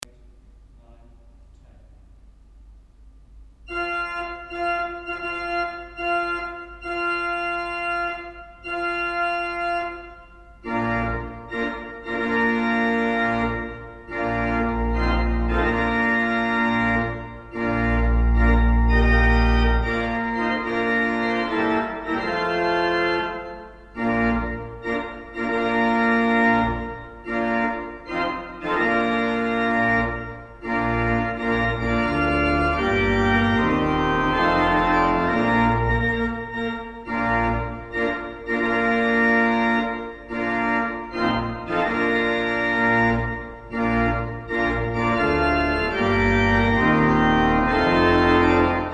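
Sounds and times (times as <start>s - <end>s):
organ playing a wedding march: 3.6s - 48.9s.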